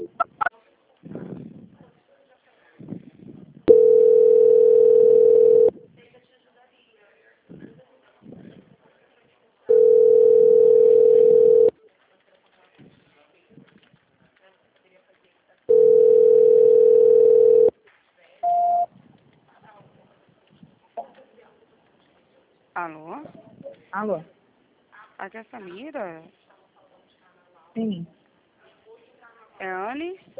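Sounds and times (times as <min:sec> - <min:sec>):
telephone tone while call is being transferred: 0:00.0 - 0:00.4, 0:03.7 - 0:05.7, 0:09.7 - 0:11.7, 0:15.7 - 0:17.7, 0:18.4 - 0:18.9
speech: 0:25.4 - 0:26.4.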